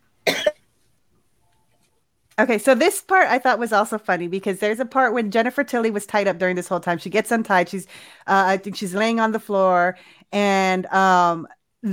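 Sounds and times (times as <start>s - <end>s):
person coughing with a rasping burst: 0.3s - 0.6s
speech: 2.4s - 11.9s.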